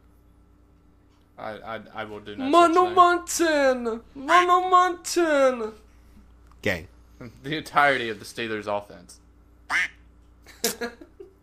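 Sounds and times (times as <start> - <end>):
speech: 1.4 - 5.8, 6.6 - 9.9, 10.6 - 11.0
duck quacking: 9.7 - 10.0.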